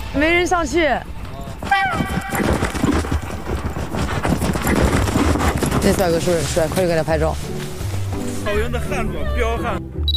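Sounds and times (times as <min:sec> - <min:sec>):
speech: 0:00.1 - 0:02.8, 0:05.8 - 0:07.5, 0:08.4 - 0:10.0
horse hooves galloping at a grassland horse event: 0:01.2 - 0:08.0.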